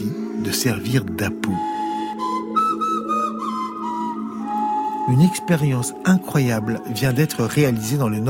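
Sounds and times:
speech: 0.4s - 1.8s, 5.1s - 8.2s
breathy prehistoric-style whistle made from a reindeer toe bone: 1.6s - 7.0s.

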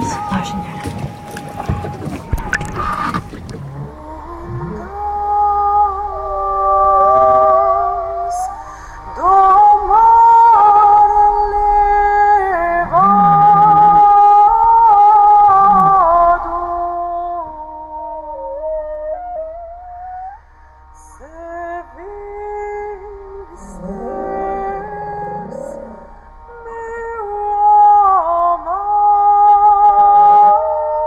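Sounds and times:
humpback whale song recorded underwater by a hydrophone: 0.0s - 31.0s.

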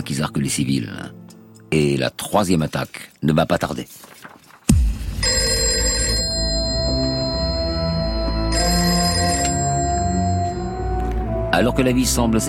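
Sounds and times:
speech: 0.0s - 4.1s, 11.6s - 12.4s
old-fashioned telephone bell ringing: 5.2s - 11.2s.

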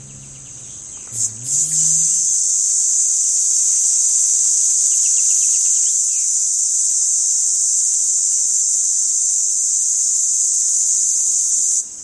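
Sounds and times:
male red cicada Tibicina haematodes calling song: 0.0s - 12.0s.

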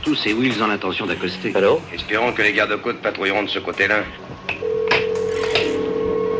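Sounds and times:
speech: 0.1s - 4.3s
telephone line tone: 4.6s - 6.3s.

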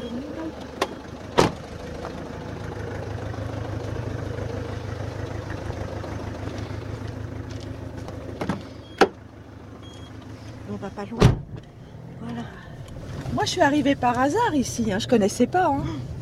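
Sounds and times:
car engine idling: 0.0s - 16.2s
car doors shutting: 0.6s - 1.8s, 8.0s - 9.2s, 11.1s - 11.7s
speech: 11.0s - 11.2s, 13.5s - 16.1s.

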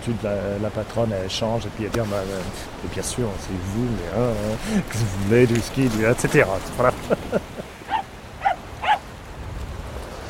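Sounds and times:
speech: 0.0s - 7.7s
laughter: 4.5s - 5.5s, 6.3s - 8.0s
dog yipping barks on a beach in Dublin: 7.9s - 9.0s.

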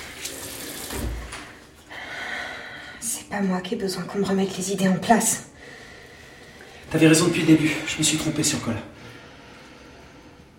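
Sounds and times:
cool tap water running onto forearms at a sink: 0.0s - 1.9s
speech: 3.3s - 5.5s, 6.9s - 9.0s.

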